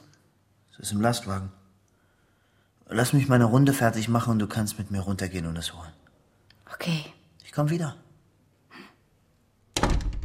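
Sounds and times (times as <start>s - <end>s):
speech: 0.8s - 1.6s, 2.9s - 6.0s, 6.7s - 8.0s
door being closed with a heavy thud: 9.8s - 10.2s.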